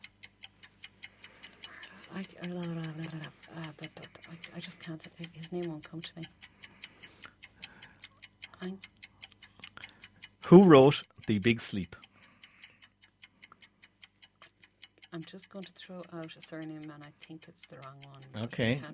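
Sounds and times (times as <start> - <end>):
quiz countdown clock ticking: 0.0 - 18.9
speech: 4.9 - 6.5, 10.5 - 12.0, 15.9 - 18.9
person speaking hesitantly: 10.4 - 12.0, 18.4 - 18.9
loud voice cutting in: 10.5 - 12.0.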